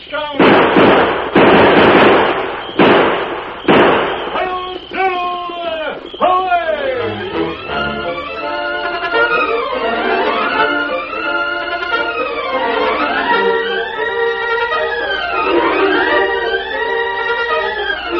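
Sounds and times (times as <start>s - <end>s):
voices: 0.0s - 0.6s, 2.2s - 18.1s
gunfire sound effect in a radio drama: 0.4s - 5.0s.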